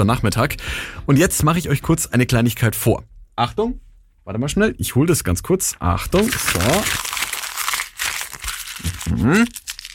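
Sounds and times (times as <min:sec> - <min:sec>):
speech: 0:00.0 - 0:07.2, 0:09.1 - 0:09.7
sheet of A4 paper being crumpled into a ball: 0:06.1 - 0:09.9.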